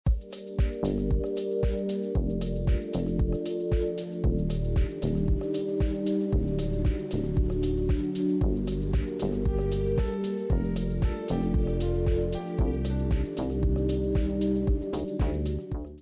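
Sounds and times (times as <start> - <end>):
music: 0.0 - 15.9.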